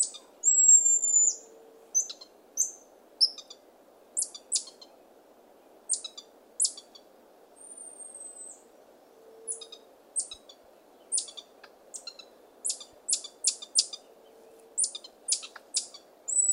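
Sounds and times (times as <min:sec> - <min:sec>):
buffy-headed marmoset sharp very high chirps: 0:00.0 - 0:03.6, 0:04.2 - 0:04.9, 0:05.9 - 0:07.0, 0:09.5 - 0:14.0, 0:14.8 - 0:16.5
faint hiss: 0:00.0 - 0:16.5.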